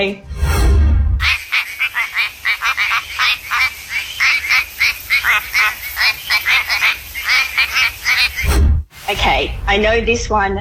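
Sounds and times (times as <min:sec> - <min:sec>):
speech: 0:00.0 - 0:00.3, 0:09.1 - 0:10.5
quacking frog from Western Australia calling: 0:01.2 - 0:08.5.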